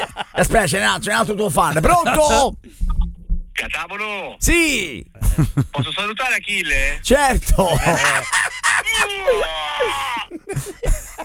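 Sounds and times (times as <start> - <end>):
laughter: 0.0 - 2.6, 5.0 - 11.2
speech: 0.2 - 2.9, 3.6 - 11.0
weightlifter's loud strained yell: 7.8 - 10.5.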